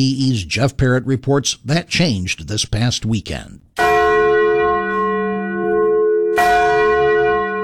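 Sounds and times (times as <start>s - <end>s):
speech: 0.0s - 4.0s
bronze church bell ringing: 3.8s - 7.6s.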